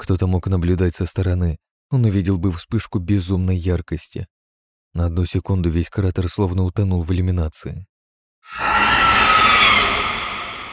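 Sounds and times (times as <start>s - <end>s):
speech: 0.0s - 4.3s, 4.9s - 7.9s, 8.5s - 8.8s
monster screeching inside a crater: 8.5s - 10.7s.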